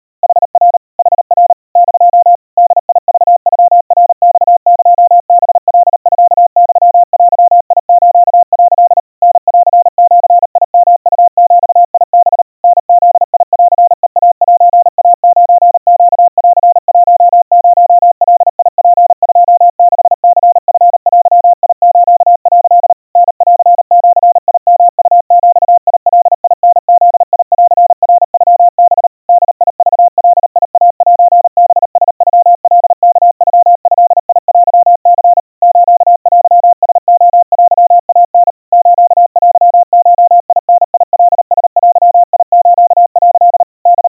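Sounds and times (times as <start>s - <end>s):
crispy 700 Hz Morse code tones at 140 cpm: 0.2s - 44.1s.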